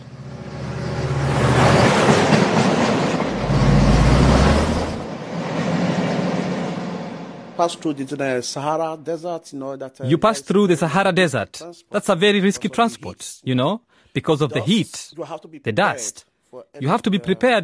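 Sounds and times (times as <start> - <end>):
train rumbling along the rails with a rolling clatter: 0.8 - 6.9
speech: 7.6 - 17.6.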